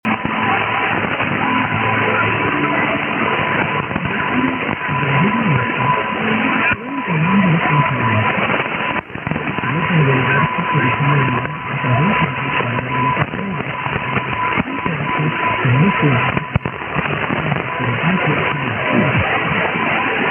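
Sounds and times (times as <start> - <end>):
medium wave radio reception on 530: 0.0 - 20.2.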